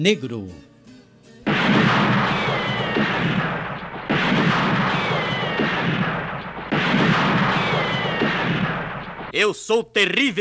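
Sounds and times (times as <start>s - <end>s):
speech: 0.0s - 0.7s, 9.4s - 10.3s
whining ricochets: 1.5s - 9.2s
loud bursts of gunfire: 1.5s - 9.3s.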